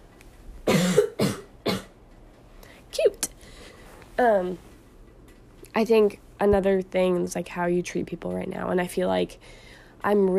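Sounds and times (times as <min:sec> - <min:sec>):
harsh coughs: 0:00.7 - 0:01.9
speech: 0:04.2 - 0:04.7, 0:05.8 - 0:10.3.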